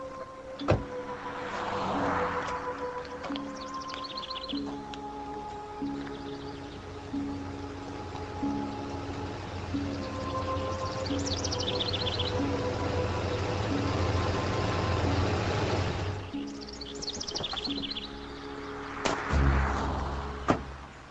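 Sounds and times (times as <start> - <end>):
tow truck engine idling with low rumble: 0.0 - 18.6
birds chirping: 0.0 - 21.0.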